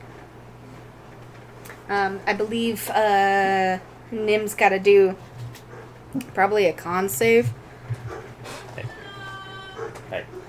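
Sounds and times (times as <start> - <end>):
speech: 1.9 - 5.3, 6.1 - 7.6
10-month-old female giant mountain dog puppy whining in a living room: 8.0 - 10.4.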